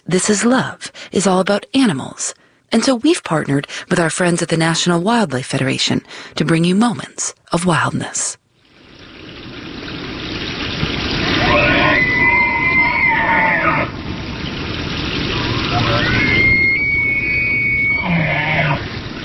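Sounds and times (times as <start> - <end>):
steady outdoor noise: 0.0 - 19.2
speech: 0.1 - 8.4
bull elk bugling: 11.2 - 14.0, 15.4 - 19.0.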